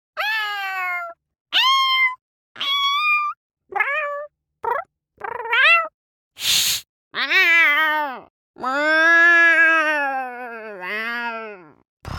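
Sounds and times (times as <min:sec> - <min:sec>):
cat meowing: 0:00.2 - 0:05.9, 0:07.2 - 0:11.8
cat hissing: 0:06.4 - 0:06.9.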